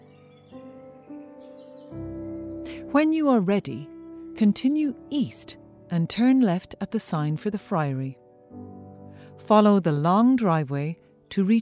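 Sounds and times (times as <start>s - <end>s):
blackbird singing: 0.0s - 3.9s
speech: 2.9s - 8.6s, 9.4s - 11.5s.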